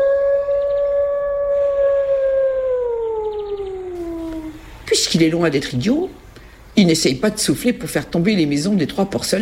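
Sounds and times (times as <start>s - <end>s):
wolf howling: 0.0s - 4.6s
speech: 4.9s - 6.2s, 6.8s - 9.4s.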